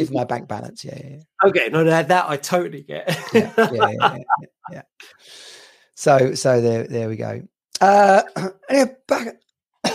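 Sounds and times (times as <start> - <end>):
speech: 0.0 - 9.9
laughter: 3.1 - 4.8
small cough with short throat-clearing bursts: 9.2 - 9.9.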